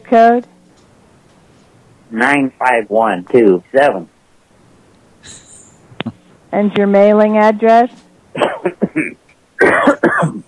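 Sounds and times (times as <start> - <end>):
speech: 0.1 - 0.5, 2.1 - 4.1, 6.5 - 10.4
person coughing with a rough throaty rasp: 8.4 - 10.4.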